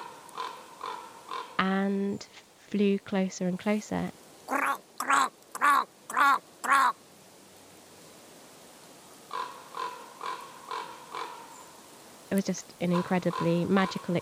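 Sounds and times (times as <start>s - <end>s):
voice imitating raven croaks: 0.0s - 1.7s, 4.5s - 7.0s, 9.3s - 11.4s, 12.8s - 14.1s
speech: 1.6s - 4.2s, 12.4s - 14.1s.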